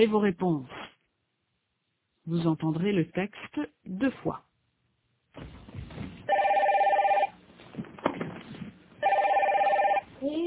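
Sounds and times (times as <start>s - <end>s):
speech: 0.0s - 0.8s, 2.3s - 4.5s, 5.4s - 5.6s
telephone ringing: 6.3s - 7.4s, 9.0s - 10.1s.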